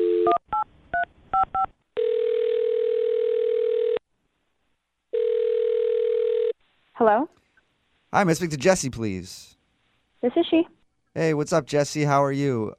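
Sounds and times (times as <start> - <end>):
long steady telephone ringback tone: 0.0 - 0.4, 2.0 - 4.0, 5.1 - 6.6
speech: 0.2 - 0.4, 7.0 - 7.3, 8.1 - 9.6, 10.2 - 12.7.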